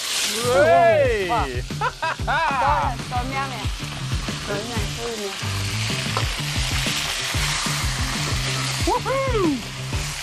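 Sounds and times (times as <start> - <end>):
food sizzling in a hot smoking wok over a big flame: 0.0 - 10.2
excited exclamations from several people: 0.3 - 3.0, 8.7 - 9.6
speech: 0.3 - 5.6
several people laughing: 0.8 - 3.0.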